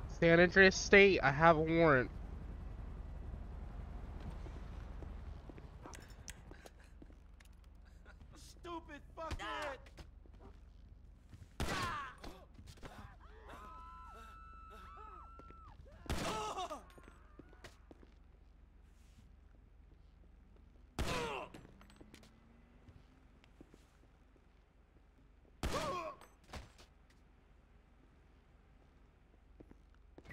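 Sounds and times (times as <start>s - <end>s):
speech: 0.2s - 2.2s
gunshots in a police role-play video game at a drug farm: 11.6s - 13.0s, 16.0s - 16.8s, 21.0s - 21.8s, 25.6s - 26.3s.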